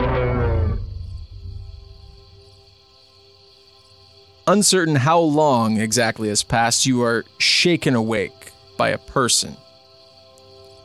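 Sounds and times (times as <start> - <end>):
enormous roar of a huge furry creature running into a forest: 0.0 - 1.6
low lingering rumble: 0.0 - 2.5
speech: 4.5 - 9.7.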